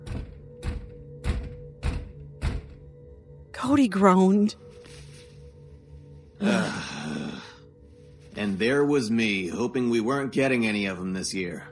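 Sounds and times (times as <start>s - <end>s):
someone pounding on a front door: 0.0s - 2.9s
speech: 3.6s - 4.7s, 6.4s - 7.2s, 8.4s - 11.7s.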